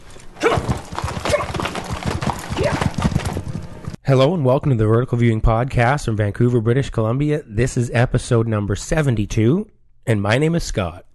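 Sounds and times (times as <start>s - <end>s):
horse hooves clip-clopping: 0.0s - 4.0s
horse whinny with short voice-like calls: 0.4s - 3.4s
speech: 4.1s - 11.1s.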